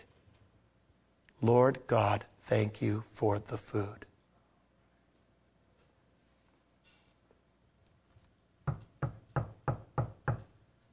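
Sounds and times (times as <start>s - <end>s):
speech: 1.4s - 4.1s
firm knocking on a door: 8.6s - 10.5s.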